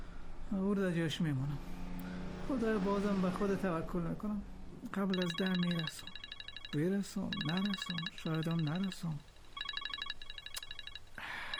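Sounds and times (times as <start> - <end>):
speech: 0.5 - 1.8, 2.5 - 9.3
phone ringing with an electronic ringtone: 5.0 - 11.5.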